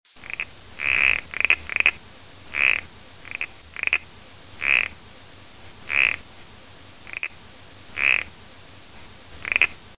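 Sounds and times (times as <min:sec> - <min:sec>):
toad chirping croaks: 0:00.2 - 0:05.0, 0:05.9 - 0:06.2, 0:07.0 - 0:08.3, 0:09.4 - 0:09.8
faint low hum: 0:00.2 - 0:09.9.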